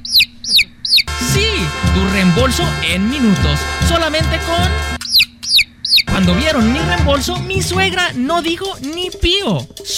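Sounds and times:
chick clucking and peeping in a commercial for an income tax service: 0.1s - 1.1s
busy blend of music and voices: 1.1s - 5.0s, 6.1s - 9.9s
speech: 2.0s - 5.0s, 6.2s - 9.9s.

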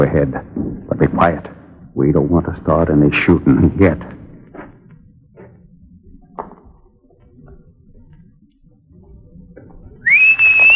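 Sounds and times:
speech: 0.0s - 4.2s
quiet low rumbling: 0.0s - 10.7s
loud shrill human whistle: 10.0s - 10.7s.

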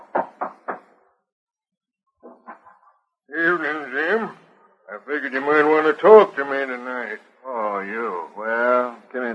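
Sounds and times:
firm raps on a door: 0.0s - 0.9s
speech: 3.4s - 4.4s, 5.0s - 9.3s.

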